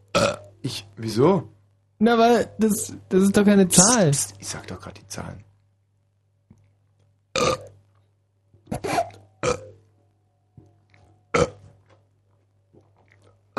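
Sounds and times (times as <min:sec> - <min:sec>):
steady low electrical hum: 0:00.0 - 0:13.5
loud raspy burps: 0:00.1 - 0:00.6, 0:07.3 - 0:07.8, 0:08.7 - 0:09.9, 0:11.3 - 0:11.9, 0:12.8 - 0:13.5
speech: 0:00.6 - 0:05.5.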